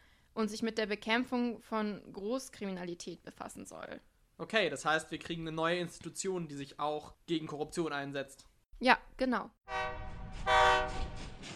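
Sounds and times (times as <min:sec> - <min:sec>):
speech: 0:00.4 - 0:10.6
train horn blaring in a sustained rich chord: 0:09.7 - 0:11.4
low rumble of rolling rail cars: 0:09.7 - 0:11.5.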